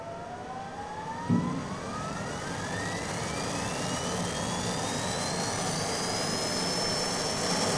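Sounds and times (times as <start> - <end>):
whine climbing smoothly in pitch during a rocket lift-off: 0.0 - 7.6
brief thump: 1.2 - 2.1
rocket lifting off with a loud steady roar: 1.2 - 3.1.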